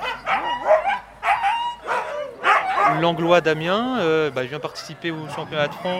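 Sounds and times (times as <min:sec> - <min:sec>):
sled dogs barking and yelping at a dryland dog-kart race: 0:00.0 - 0:05.9
speech: 0:02.9 - 0:05.9.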